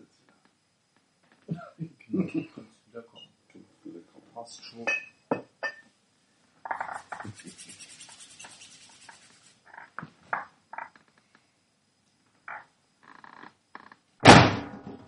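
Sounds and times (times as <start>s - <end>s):
laughter: 1.5s - 2.7s
speech: 2.3s - 2.6s, 4.5s - 5.1s
rustling: 6.7s - 10.4s
door slamming shut: 14.2s - 15.0s.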